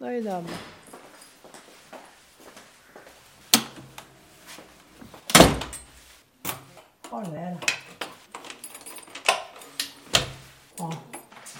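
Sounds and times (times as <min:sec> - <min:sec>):
faint shuffling and handling noises: 0:00.0 - 0:11.5
speech: 0:00.2 - 0:00.8, 0:07.1 - 0:07.8
door slamming shut: 0:05.0 - 0:05.9.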